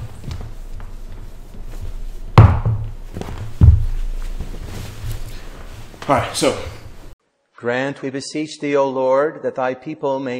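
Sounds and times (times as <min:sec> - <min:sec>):
wooden chair being moved back with heavy thunks: 0:02.3 - 0:04.6
speech: 0:06.1 - 0:06.8, 0:07.6 - 0:10.3.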